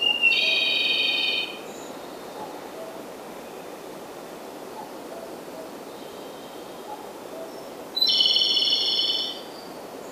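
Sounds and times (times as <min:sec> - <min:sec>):
Japanese robin singing a rapid rattling trill: 0:00.0 - 0:01.6, 0:08.0 - 0:09.4.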